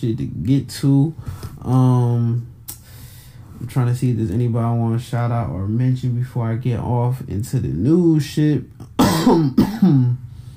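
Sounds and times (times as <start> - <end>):
speech: 0.0 - 2.5, 3.6 - 10.2
person clearing throat into the mic: 9.0 - 10.2
person coughing: 9.0 - 10.2.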